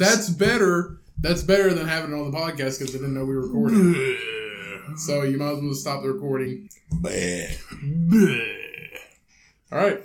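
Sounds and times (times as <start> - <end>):
speech: 0.0 - 8.9, 9.7 - 10.0
long drawn-out croaking burp: 3.5 - 5.1, 6.9 - 9.2.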